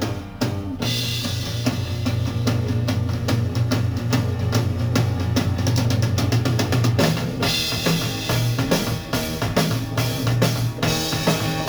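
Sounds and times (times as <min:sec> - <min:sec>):
drums for a guitar solo: 0:00.0 - 0:11.6.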